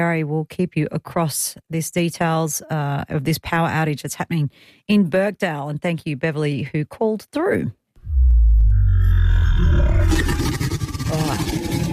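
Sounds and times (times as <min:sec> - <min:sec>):
speech: 0:00.0 - 0:07.8
dinosaur roar sound effect: 0:08.0 - 0:11.9.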